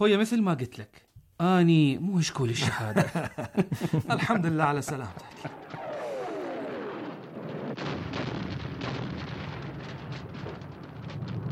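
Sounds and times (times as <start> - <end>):
speech: 0.0 - 5.6
laughter: 2.6 - 6.0
booming explosions near Baghdad airport: 3.8 - 11.4
falling whine: 5.0 - 8.7
crackling bursts of gunfire near Baghdad airport: 5.3 - 11.4.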